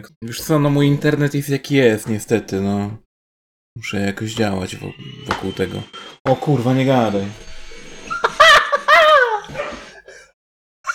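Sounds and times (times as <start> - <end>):
speech: 0.0 - 3.0, 3.8 - 7.5
laughter: 8.1 - 9.8
dog barking and yelping: 9.1 - 9.9.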